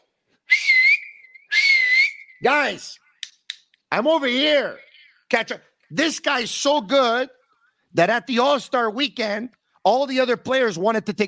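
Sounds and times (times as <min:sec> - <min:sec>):
person whistling two high notes: 0:00.5 - 0:02.8
speech: 0:02.4 - 0:03.0, 0:03.9 - 0:11.2.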